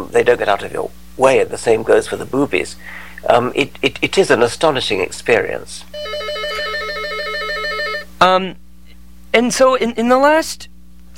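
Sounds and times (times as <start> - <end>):
speech: 0.1 - 6.2, 8.2 - 8.6, 9.3 - 10.7
telephone ringing with an electronic trill: 6.0 - 8.1.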